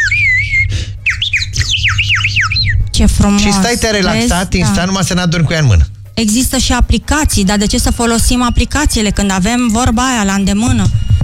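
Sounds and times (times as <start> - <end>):
hand-blown bird-call whistle chirping and trilling: 0.0 - 2.9, 7.6 - 9.1, 10.8 - 11.2
speech: 3.0 - 11.0.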